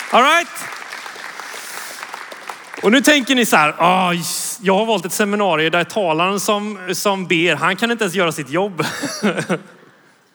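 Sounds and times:
audience applause with many hands clapping: 0.0s - 3.3s
speech: 0.1s - 0.8s, 2.8s - 9.7s
laughter: 8.8s - 10.0s.

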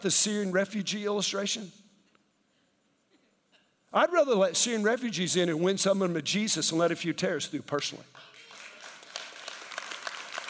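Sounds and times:
speech: 0.0s - 1.8s, 3.9s - 8.4s
sparse polite clapping from a small audience: 8.2s - 10.4s.

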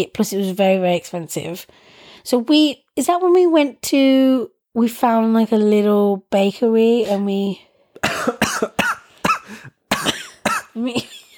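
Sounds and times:
speech: 0.0s - 8.8s, 10.8s - 11.2s
person coughing from choking on air: 8.0s - 11.3s
gasping strained breaths: 9.0s - 9.9s.

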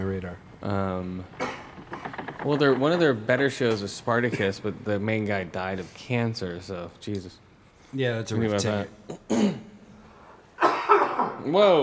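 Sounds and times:
speech: 0.3s - 1.5s, 2.4s - 9.7s, 11.4s - 11.8s
harsh loud coughs: 1.3s - 2.1s, 4.2s - 4.9s, 8.5s - 11.4s.

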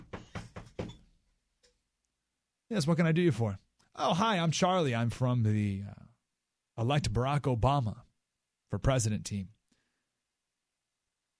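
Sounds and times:
knocking on a home's door: 0.0s - 1.0s
speech: 2.7s - 6.0s, 6.8s - 8.0s, 8.7s - 9.6s.

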